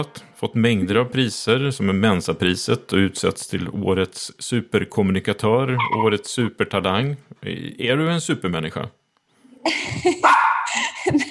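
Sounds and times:
speech: 0.0 - 9.0, 9.6 - 11.2
dog barking sharp yaps: 5.8 - 6.0
laughter: 9.7 - 11.2.

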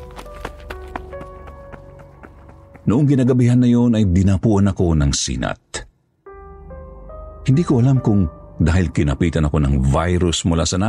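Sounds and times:
quick running footsteps sound effect in a horror story: 0.0 - 3.6
speech: 2.9 - 5.6, 7.5 - 10.8.

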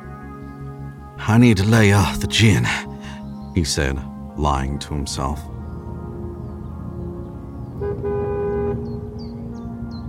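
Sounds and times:
faint birds chirping: 0.0 - 10.0
speech: 1.2 - 2.9, 3.6 - 5.5
brief car horn toot: 7.8 - 9.0.

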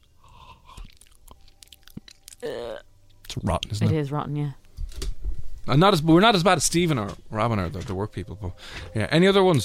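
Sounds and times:
open-mouthed chewing with moist smacks and crunchy clicks: 0.0 - 3.8
speech: 2.4 - 4.6, 5.6 - 9.6.

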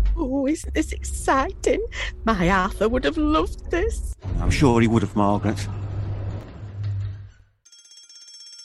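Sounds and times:
speech: 0.2 - 5.8
fire alarm electric bell ringing: 7.7 - 8.6.

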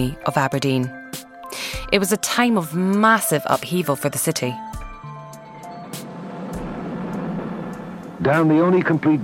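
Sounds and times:
speech: 0.0 - 4.7, 8.2 - 9.2
heavy road traffic: 4.8 - 9.2.

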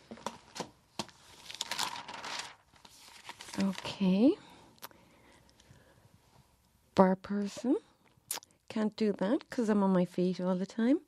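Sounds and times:
local newspaper pages rustling as they are turned: 0.0 - 4.2
newspaper pages crinkling: 0.1 - 4.2
speech: 3.6 - 4.5, 7.0 - 7.9, 8.7 - 11.0.

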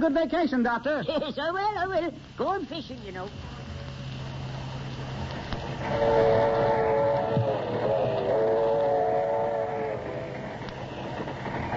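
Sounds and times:
speech: 0.0 - 3.6, 5.8 - 6.9
train rumbling: 4.3 - 11.7
sustained harmonic train whistle blowing: 5.8 - 11.7.

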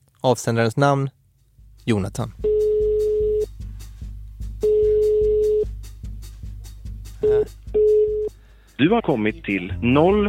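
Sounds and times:
speech: 0.2 - 1.2, 1.8 - 2.6, 7.3 - 7.6, 8.8 - 10.2
rhythmic low thumping beat: 1.5 - 10.2
phone line ringback tone during an outgoing call: 2.4 - 3.5, 4.6 - 5.7, 7.2 - 8.3.

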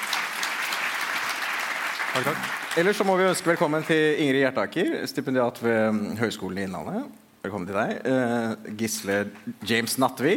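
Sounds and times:
audience applause of many hands clapping: 0.0 - 4.4
speech: 2.2 - 10.3.

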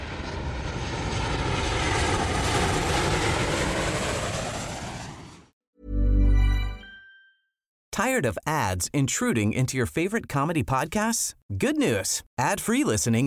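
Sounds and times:
airplane engine roaring overhead: 0.0 - 5.5
speech: 8.0 - 13.2.

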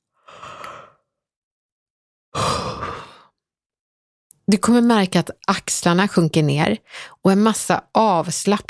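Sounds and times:
person yawning: 2.4 - 3.3
speech: 4.5 - 8.6.

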